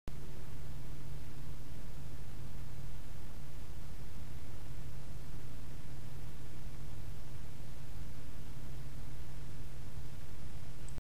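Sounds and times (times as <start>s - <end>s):
12 cm PC fan running at 7 V: 0.1s - 11.0s.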